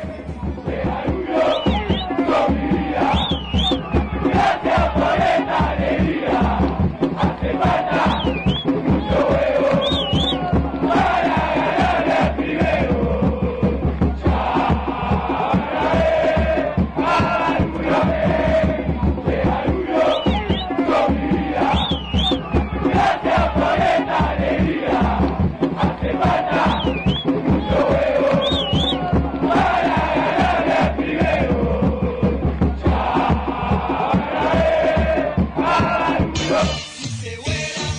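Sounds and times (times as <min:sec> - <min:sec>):
football supporters chanting in the stands: 0:00.0 - 0:37.9
whistles: 0:01.4 - 0:02.2, 0:03.0 - 0:04.2, 0:08.0 - 0:08.8, 0:09.7 - 0:10.4, 0:20.0 - 0:20.8, 0:21.6 - 0:22.8, 0:26.6 - 0:27.4, 0:28.3 - 0:29.0.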